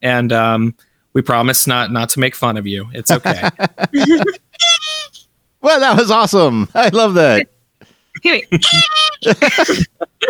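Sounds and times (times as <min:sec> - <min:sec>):
speech: 0:00.0 - 0:04.4, 0:05.1 - 0:07.5, 0:08.2 - 0:10.2
laughter: 0:03.1 - 0:04.4, 0:08.4 - 0:10.2
rubber chicken toy squawk: 0:04.6 - 0:05.2, 0:08.7 - 0:09.2.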